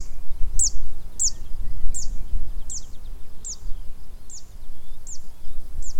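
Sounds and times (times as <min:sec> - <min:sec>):
zitting cisticola singing: 0:00.0 - 0:05.9.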